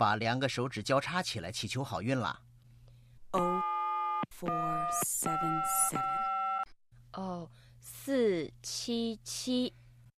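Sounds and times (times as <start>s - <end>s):
speech: 0.0s - 2.5s, 3.3s - 3.7s, 4.3s - 6.2s, 7.2s - 9.8s
telephone ringback tone on a call to a clothing shop: 3.4s - 6.7s.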